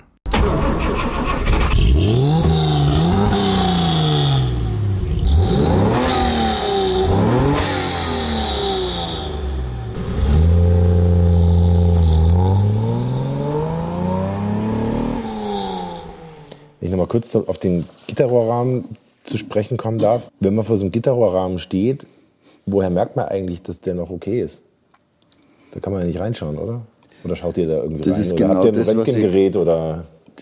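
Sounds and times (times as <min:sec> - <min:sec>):
speech: 0:00.4 - 0:02.5, 0:17.1 - 0:24.6, 0:25.7 - 0:30.4
Mercedes 300 SL sports car engine starting and revving: 0:01.6 - 0:16.7.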